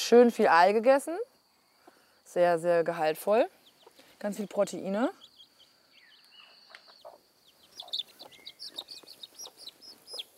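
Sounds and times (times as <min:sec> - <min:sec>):
speech: 0:00.1 - 0:01.3, 0:02.3 - 0:03.6, 0:04.2 - 0:05.2
faint chirps: 0:01.3 - 0:02.4, 0:03.5 - 0:10.3
hen clucking and chattering: 0:03.6 - 0:05.6, 0:06.2 - 0:10.3.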